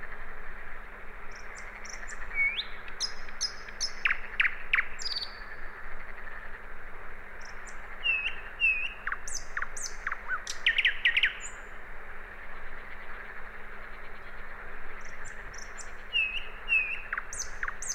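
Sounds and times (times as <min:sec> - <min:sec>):
faint steady hum: 0:00.0 - 0:17.9
common nightingale Luscinia megarhynchos singing whistles and chirps: 0:01.3 - 0:05.5, 0:07.4 - 0:11.7, 0:15.0 - 0:17.9.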